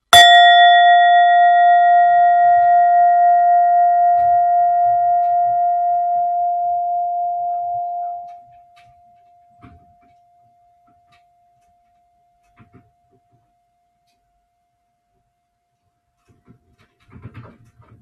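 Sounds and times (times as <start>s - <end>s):
bell-like chime on a leather coaster struck and ringing: 0.0s - 9.2s.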